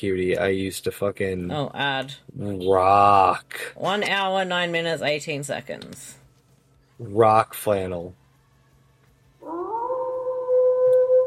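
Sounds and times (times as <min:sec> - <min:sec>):
speech: 0:00.0 - 0:06.2, 0:07.0 - 0:08.2
faint low hum: 0:00.0 - 0:11.2
wolf howling: 0:09.4 - 0:11.2.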